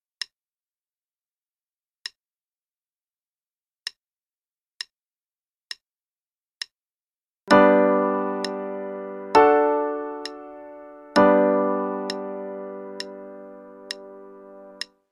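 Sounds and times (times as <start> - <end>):
G major I-V-I chord pattern at 66 quarter notes per minute: 7.5 - 14.9.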